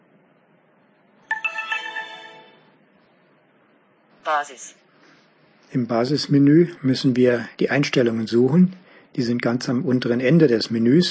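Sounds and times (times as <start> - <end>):
electronic device start-up tone on switching on: 1.3 - 2.8
speech: 4.2 - 4.9, 5.7 - 11.0.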